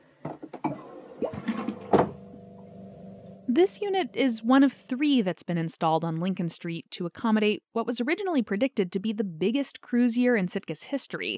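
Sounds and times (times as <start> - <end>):
low-flow toilet flushing in a public restroom: 0.5 - 3.1
speech: 3.6 - 11.3.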